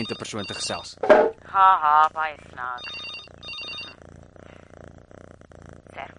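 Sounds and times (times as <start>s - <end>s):
home landline telephone electronic ring: 0.0s - 1.1s, 2.6s - 4.0s
speech: 0.0s - 3.1s.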